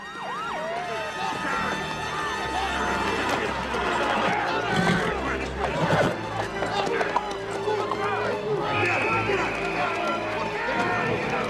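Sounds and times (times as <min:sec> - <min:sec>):
overlapping voices of a dense crowd: 0:00.6 - 0:11.4.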